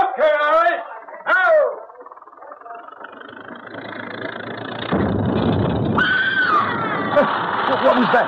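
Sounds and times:
steady engine-like rumble: 0.0s - 8.2s
person screaming from up in a wall: 6.0s - 7.3s.

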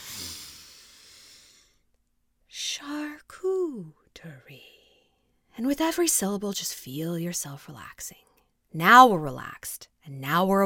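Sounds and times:
person breathing in deeply during a guided relaxation exercise: 0.0s - 1.8s
speech: 3.7s - 4.8s, 5.6s - 10.6s.

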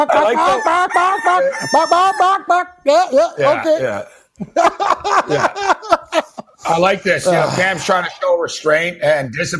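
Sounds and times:
chicken clucking and crowing sound effect: 0.0s - 2.8s
laughter: 0.0s - 8.2s
speech: 0.0s - 9.5s.

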